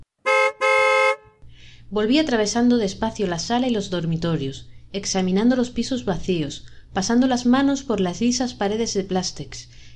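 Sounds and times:
car horn honking from downstairs: 0.2 - 1.4
speech: 1.9 - 9.9.

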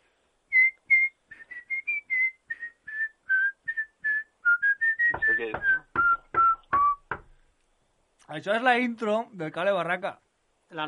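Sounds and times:
person whistling a lively tune: 0.5 - 7.2
speech: 5.4 - 5.8, 8.3 - 10.8.

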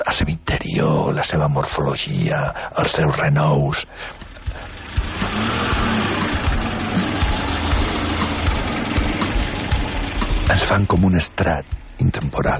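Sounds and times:
speech: 0.7 - 4.2, 10.5 - 12.5
car engine idling: 2.4 - 12.5.

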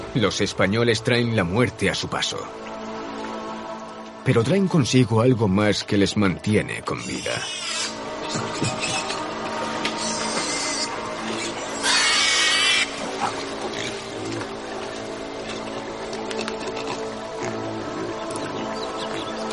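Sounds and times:
speech: 0.1 - 2.7, 4.2 - 7.7
brief louder squeal-like burst: 7.0 - 9.3, 9.9 - 14.0
pigs grunting and snuffling: 7.0 - 9.3, 10.0 - 14.5, 16.3 - 19.3.

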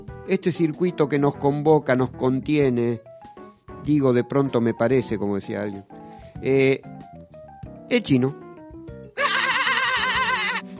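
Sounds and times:
speech: 0.0 - 3.1, 3.8 - 6.9, 7.9 - 8.4
shout coming out as a wavering sheep's bleat: 9.2 - 10.7.

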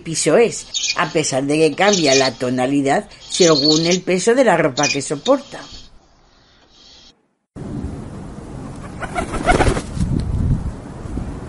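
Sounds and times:
speech: 0.0 - 5.8
pigeons cooing: 8.6 - 9.7
pigeon wings flapping: 8.6 - 10.3.

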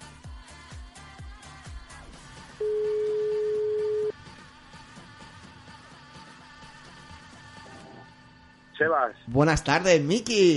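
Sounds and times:
rhythmic music bed: 0.0 - 7.8
telephone ringing tone on an outgoing call: 2.6 - 4.1
speech: 8.8 - 10.5.

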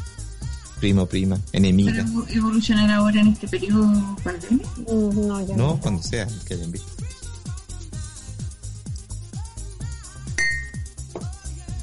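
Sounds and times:
steady rhythmic music with a thumping low beat: 0.0 - 11.8
speech: 0.8 - 7.0
glasses clinking in a toast: 10.4 - 11.0.

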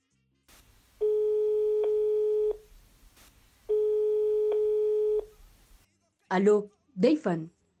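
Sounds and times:
faint telephone line hiss: 0.5 - 5.8
electronic telephone call-connecting tones: 1.0 - 2.7, 3.7 - 5.4
speech: 6.3 - 7.6.

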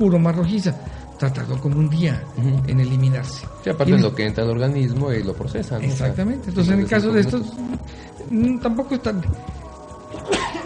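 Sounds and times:
speech: 0.0 - 9.6
faint steady hum: 0.0 - 10.6
person sneezing: 10.2 - 10.6.

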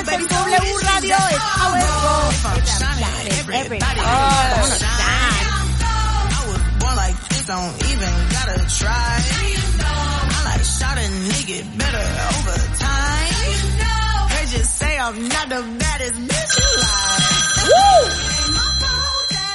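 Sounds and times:
loud pop music with singing: 0.0 - 19.5
electronic telephone ring tone: 16.5 - 19.5.

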